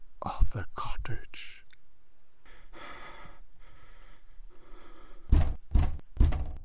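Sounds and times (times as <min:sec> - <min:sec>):
speech: 0:00.3 - 0:01.6
firm knocks on a wooden cottage door: 0:05.3 - 0:06.6.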